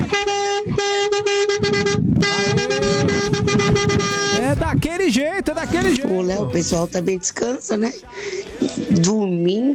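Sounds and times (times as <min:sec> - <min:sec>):
vehicle horn honking: 0:00.0 - 0:04.6
speech: 0:04.7 - 0:09.7.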